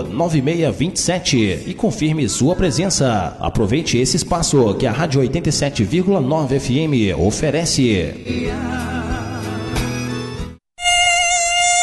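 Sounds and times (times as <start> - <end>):
speech: 0.0 - 9.2
Aedes aegypti mosquito buzzing: 9.6 - 11.8.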